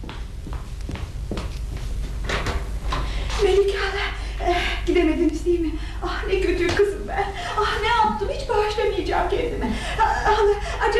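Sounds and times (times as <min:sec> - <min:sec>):
low room hum: 0:00.0 - 0:10.9
door opening or closing: 0:02.2 - 0:03.5
speech: 0:05.0 - 0:10.9.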